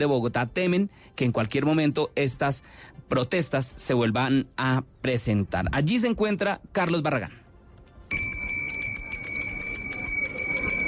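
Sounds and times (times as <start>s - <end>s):
speech: 0.0s - 7.4s
ice cream vendor's hand bell ringing in Plaza de Bolivar Bogota: 8.1s - 10.8s.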